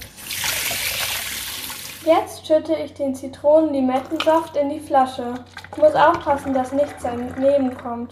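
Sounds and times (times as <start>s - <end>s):
tap water running: 0.0s - 2.2s, 5.2s - 8.0s
speech: 2.1s - 8.0s.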